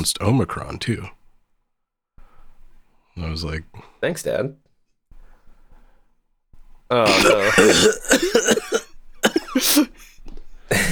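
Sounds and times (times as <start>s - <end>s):
speech: 0.0s - 1.2s, 3.2s - 4.6s, 6.9s - 8.9s, 9.6s - 10.1s
person coughing harsh throaty coughs: 7.1s - 10.1s, 10.7s - 10.9s.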